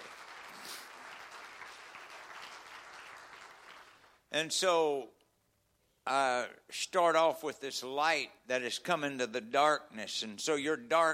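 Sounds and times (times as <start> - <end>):
audience clapping in praise of God: 0.0 - 4.2
speech: 4.3 - 5.2, 6.1 - 11.1.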